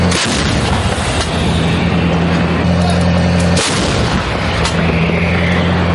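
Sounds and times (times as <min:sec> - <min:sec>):
155mm Paladin self-propelled howitzer firing shells: 0:00.0 - 0:01.9, 0:03.3 - 0:05.6
constant loud howitzer engine rumble and hum: 0:00.0 - 0:05.9.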